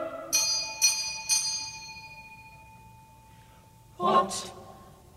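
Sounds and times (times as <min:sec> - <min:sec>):
bright bell ringing to start a horse race: 0:00.3 - 0:03.9
speech: 0:04.3 - 0:04.6.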